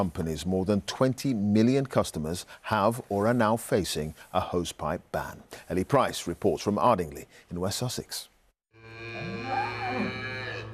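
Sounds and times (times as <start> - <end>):
speech: 0.0 - 8.3
cattle mooing on a farm during a drought: 8.8 - 10.7.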